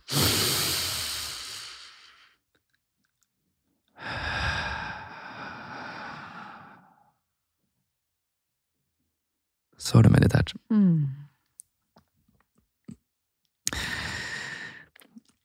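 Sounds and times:
long slow breaths with drawn-out airy exhale: 0.0s - 2.4s, 3.9s - 7.2s, 13.7s - 15.0s
speech: 9.9s - 11.2s.

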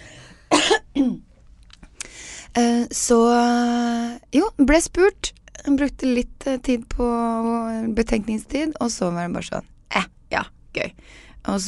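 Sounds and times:
person coughing forcefully: 0.4s - 1.3s
speech: 2.6s - 11.6s.

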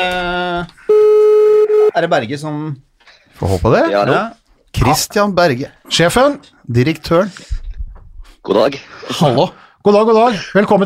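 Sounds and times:
telephone ringing with electronic tones: 0.9s - 1.9s
speech: 2.0s - 7.6s, 8.4s - 10.8s.

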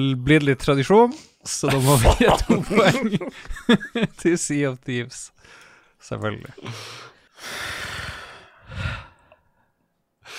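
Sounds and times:
speech: 0.0s - 7.8s
laughter: 1.7s - 4.2s
heavy breathing: 5.4s - 10.3s.

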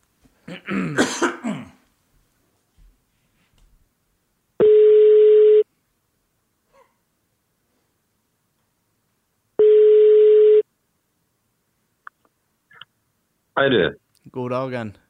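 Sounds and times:
person clearing throat: 0.4s - 1.8s
speech: 0.5s - 1.6s, 13.6s - 15.0s
person coughing: 0.5s - 1.8s
telephone ringback tone: 4.6s - 5.6s, 9.6s - 10.6s.

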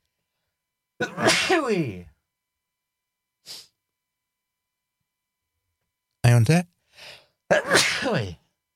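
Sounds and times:
loud sneeze: 1.0s - 2.0s, 7.5s - 8.4s
speech: 1.0s - 2.1s, 6.3s - 8.4s
short breathy sniff: 3.4s - 3.8s.

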